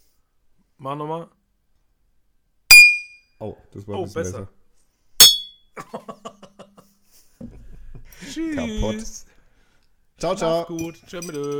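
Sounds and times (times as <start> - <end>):
speech: 0.8 - 1.4, 3.4 - 4.6, 5.8 - 6.4, 8.2 - 9.3, 10.2 - 11.5
hard object striking a thick drinking glass: 2.7 - 3.2, 5.2 - 5.6, 10.7 - 11.5
laughter: 5.8 - 8.4.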